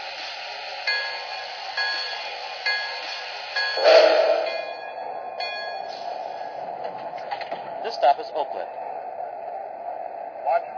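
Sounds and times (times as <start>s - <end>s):
constant mechanical hum of an idling passenger train: 0.0s - 10.7s
bell ringing at a station platform: 0.9s - 6.0s.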